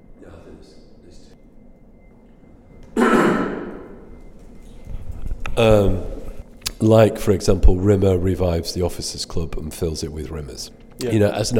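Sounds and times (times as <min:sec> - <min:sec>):
person coughing: 0:03.0 - 0:04.0
speech: 0:05.6 - 0:06.1, 0:06.8 - 0:11.5.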